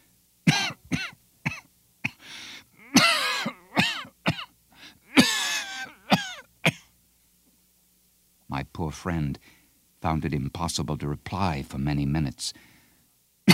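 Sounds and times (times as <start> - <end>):
man's harsh coughing fit in a cavern: 0.5 - 6.9
raspy wheezing gasps: 2.2 - 3.8, 4.7 - 6.1
speech: 8.9 - 12.7.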